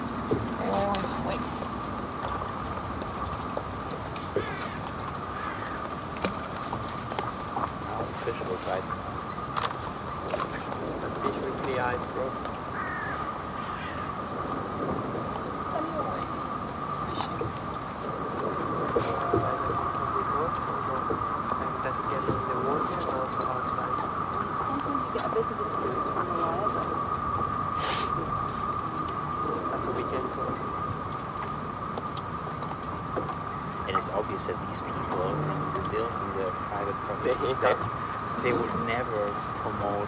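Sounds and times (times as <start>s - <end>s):
boat engine droning on the water: 0.0s - 40.0s
faint voices: 0.4s - 1.8s, 6.8s - 9.3s, 10.2s - 12.4s, 13.8s - 31.0s, 33.8s - 40.0s.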